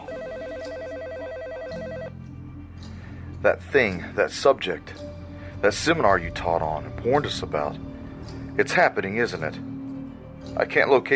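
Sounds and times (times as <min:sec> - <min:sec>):
telephone ringing with electronic warbling trill: 0:00.0 - 0:02.1
speech: 0:03.4 - 0:07.9, 0:08.6 - 0:09.7, 0:10.6 - 0:11.1.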